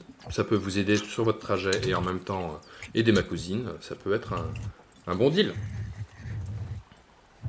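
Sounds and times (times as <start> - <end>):
speech: 0.3 - 5.8
donkeys braying in rasping bursts: 1.0 - 7.0.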